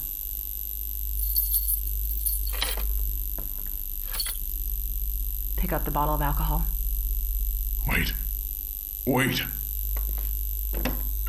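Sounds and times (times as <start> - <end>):
steady low hum: 0.0 - 11.2
door keys jangling as they are handed over: 1.2 - 3.0, 4.0 - 4.5
speech: 5.6 - 6.8, 7.8 - 8.2, 9.0 - 9.6.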